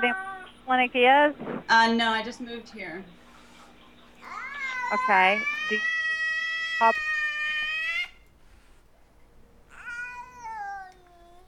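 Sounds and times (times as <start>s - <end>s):
cat meowing while put into a box: 0.0s - 0.9s, 4.2s - 8.3s, 9.7s - 11.4s
speech: 0.0s - 3.2s, 4.9s - 5.9s, 6.8s - 7.1s.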